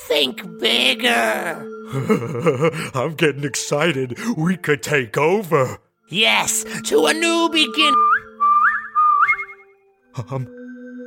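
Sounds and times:
speech: 0.1s - 8.1s, 10.2s - 10.6s
person whistling bright phrases with warbling trills: 7.7s - 9.8s.

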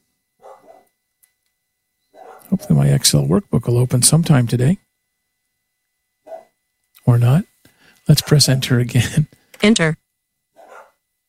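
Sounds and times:
dog barking: 0.4s - 0.9s, 2.1s - 2.8s, 6.2s - 6.6s, 10.6s - 11.0s
speech: 2.5s - 4.8s, 7.1s - 7.5s, 8.1s - 10.0s.

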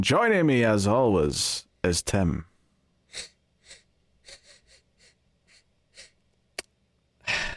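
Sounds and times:
speech: 0.0s - 2.5s, 3.1s - 3.3s
exaggerated nasal sniffing: 3.1s - 6.2s.

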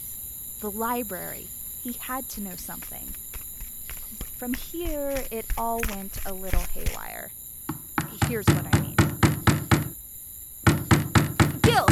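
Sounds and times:
speech: 0.6s - 3.3s, 4.4s - 7.4s, 8.3s - 8.9s
knocking on a door: 7.7s - 10.0s, 10.6s - 11.8s.

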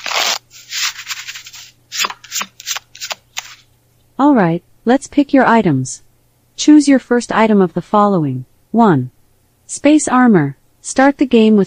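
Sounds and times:
deck of cards being shuffled: 0.0s - 3.7s
speech: 4.2s - 11.6s.

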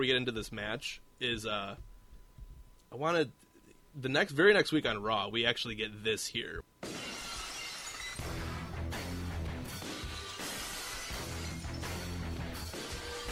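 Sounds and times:
speech: 0.0s - 1.9s, 2.9s - 6.7s
glass shattering: 6.8s - 8.7s, 9.7s - 13.2s
rock entrance theme with heavy distorted guitar riff: 8.2s - 13.2s.

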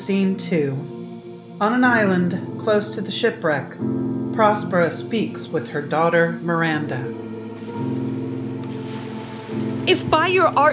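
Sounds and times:
speech: 0.0s - 1.0s, 1.6s - 7.9s, 9.9s - 10.7s
rough sea waves roaring with deep droning undertone: 7.0s - 10.7s.

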